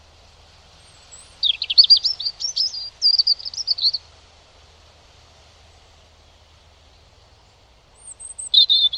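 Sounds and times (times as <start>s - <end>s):
European robin song: 0.7s - 4.2s, 5.6s - 8.9s.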